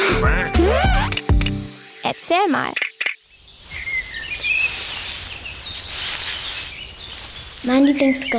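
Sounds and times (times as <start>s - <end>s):
many birds chirping: 0.4s - 8.3s
speech: 2.1s - 2.8s, 7.6s - 8.3s
rustling in bushes: 3.2s - 8.3s.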